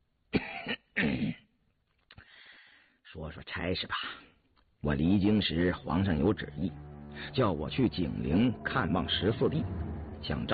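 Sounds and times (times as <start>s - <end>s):
dry cough: 0.3s - 1.5s
speech: 3.2s - 10.5s.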